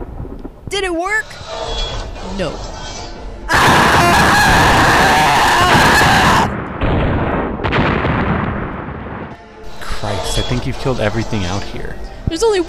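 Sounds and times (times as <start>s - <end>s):
noisy crackle: 0.0s - 2.2s, 3.5s - 11.7s
speech: 0.7s - 3.0s, 10.5s - 12.6s
sustained rumbling roar of an explosion: 3.5s - 6.9s
loud explosion: 3.5s - 9.4s.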